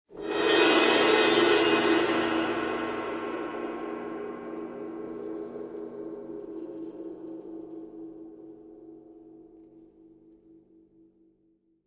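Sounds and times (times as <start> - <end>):
timpani: 0.1 - 6.6
large cymbal trill: 0.2 - 6.6.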